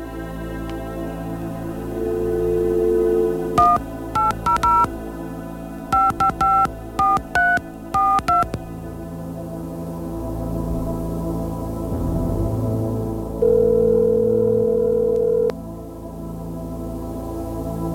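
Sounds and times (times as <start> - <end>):
low steady hum: 0.0 - 17.9
touch-tone keypad beeps of a telephone number being dialed: 3.6 - 4.9, 6.0 - 8.6.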